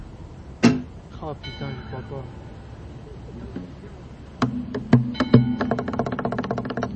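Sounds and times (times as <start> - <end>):
low hollow ring of a guitar body: 0.6 - 3.0, 4.4 - 6.9
speech: 1.3 - 2.5
fingers tapping on a guitar body: 4.4 - 6.9.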